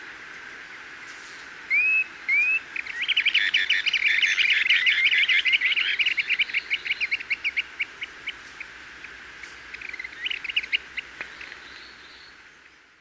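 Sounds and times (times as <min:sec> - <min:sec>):
Planalto tyrannulet Phyllomyias fasciatus brevirostris whistling and chirping: 0:01.7 - 0:08.4, 0:09.7 - 0:11.9.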